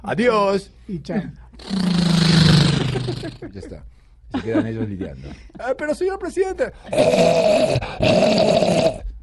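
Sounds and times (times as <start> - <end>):
speech: 0.0 - 2.4, 3.1 - 9.1
voice imitating zombie growls: 1.6 - 3.4, 6.9 - 9.0
laughter: 2.7 - 6.2.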